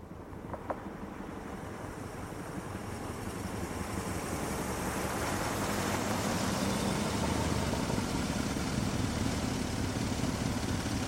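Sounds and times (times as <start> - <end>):
broad hiss of wind-like noise: 0.0 - 11.0
car engine arriving and idling: 6.1 - 11.0.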